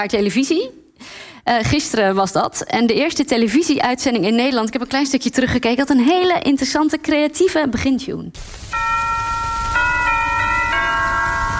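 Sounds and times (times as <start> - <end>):
speech: 0.0 - 9.0
church bells ringing a slow melody: 8.7 - 11.5.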